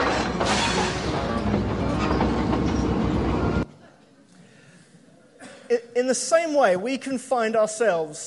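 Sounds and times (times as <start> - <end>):
train rolling along railroad track: 0.0 - 3.6
speech: 6.0 - 8.2.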